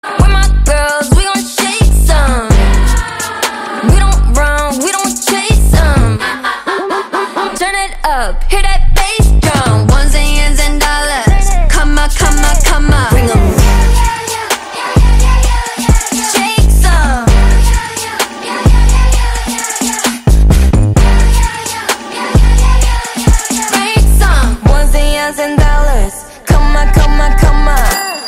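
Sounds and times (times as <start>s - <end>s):
K-pop song: 0.0s - 28.2s.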